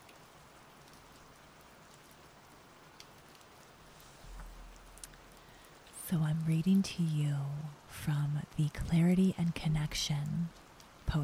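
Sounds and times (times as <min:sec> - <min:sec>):
raindrops falling: 0:00.0 - 0:07.2, 0:09.7 - 0:11.2
speech: 0:06.1 - 0:11.2.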